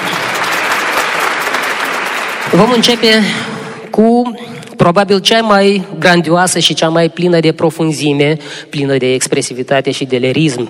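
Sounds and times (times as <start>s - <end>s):
audience applauding at a classical music concert: 0.0s - 3.4s
speech: 2.5s - 10.6s.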